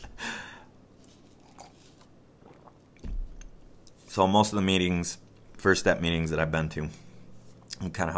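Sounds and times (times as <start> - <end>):
person slurping a sip of coffee: 1.0 - 2.9
speech: 4.2 - 7.0, 7.8 - 8.1.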